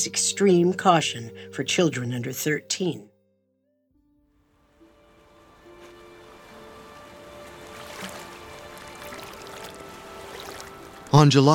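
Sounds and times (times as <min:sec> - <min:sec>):
speech: 0:00.0 - 0:03.1, 0:11.1 - 0:11.5
water lapping and sloshing around a boat drifting down the Hudson River: 0:05.0 - 0:11.1.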